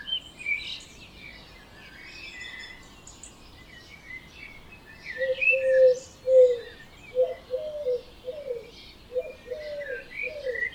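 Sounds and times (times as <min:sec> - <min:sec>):
early-morning chorus of birds chirping and trilling: 0:00.0 - 0:10.7
faint, quiet hiss: 0:00.0 - 0:10.7
dove cooing: 0:05.2 - 0:10.7.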